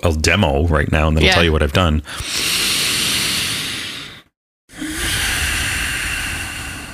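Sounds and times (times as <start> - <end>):
speech: 0.0 - 2.8
slow deep breath drawn in through the nose: 2.1 - 6.9.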